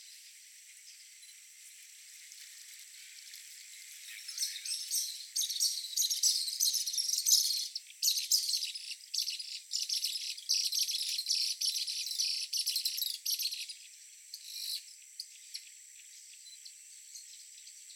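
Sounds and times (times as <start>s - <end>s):
martin dry twittering chatter song: 4.0s - 13.8s.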